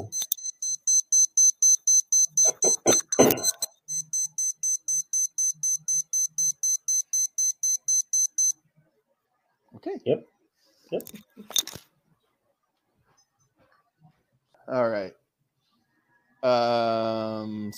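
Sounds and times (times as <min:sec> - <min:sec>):
kitchen timer alarm beeping: 0:00.0 - 0:08.6
speech: 0:10.0 - 0:10.3, 0:10.9 - 0:11.6, 0:14.7 - 0:15.2, 0:16.4 - 0:17.7.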